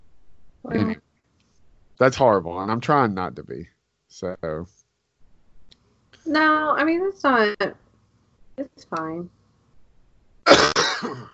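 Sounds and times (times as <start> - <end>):
speech: 0.7 - 1.0, 2.0 - 4.8, 6.2 - 7.8, 8.6 - 9.4, 10.4 - 11.3
person coughing into the microphone: 10.5 - 11.3.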